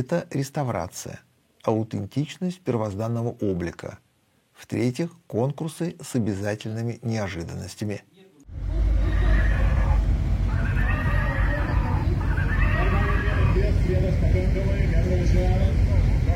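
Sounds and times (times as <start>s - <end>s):
speech: 0.0s - 4.0s, 4.6s - 8.8s, 14.1s - 16.3s
steady low rumble of noise: 8.5s - 16.3s
stallion neighing: 8.7s - 13.8s.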